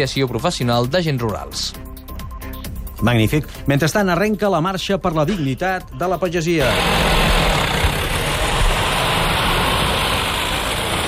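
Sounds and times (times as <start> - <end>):
speech: 0.0 - 1.8, 3.0 - 7.1
several heavy tractor engines idling and running: 5.0 - 11.0.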